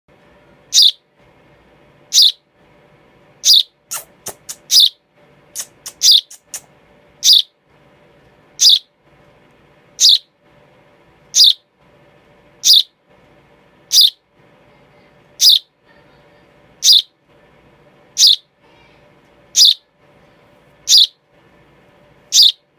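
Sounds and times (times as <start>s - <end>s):
baby sparrow chirping: 0.7s - 1.0s, 2.1s - 2.4s, 3.4s - 7.6s, 8.6s - 8.9s, 10.0s - 10.3s, 11.3s - 11.7s, 12.6s - 13.0s, 13.9s - 14.2s, 15.4s - 16.0s, 16.8s - 17.2s, 18.1s - 19.9s, 20.8s - 21.2s, 22.3s - 22.6s.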